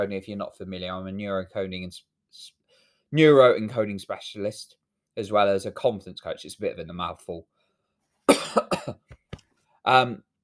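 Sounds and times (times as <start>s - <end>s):
speech: 0.0s - 7.5s, 8.3s - 9.0s, 9.8s - 10.3s
rough coughs: 8.3s - 9.1s.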